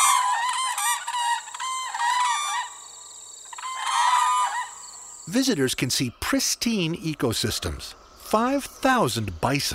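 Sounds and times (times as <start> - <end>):
trumpeting calls of whooping cranes in grasslands, boreal forests and wetlands: 0.0 - 5.2
speech: 5.3 - 9.7.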